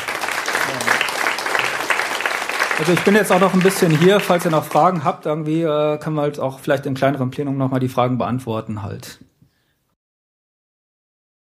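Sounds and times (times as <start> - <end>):
audience applause after a talk: 0.0 - 5.2
speech: 2.8 - 9.3.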